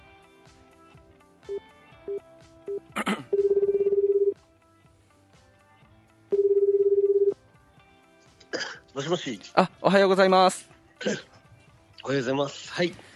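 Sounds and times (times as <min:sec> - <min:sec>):
short telephone dial tone beeps: 0:01.5 - 0:04.4, 0:06.3 - 0:07.4
speech: 0:09.1 - 0:11.3, 0:12.0 - 0:13.1.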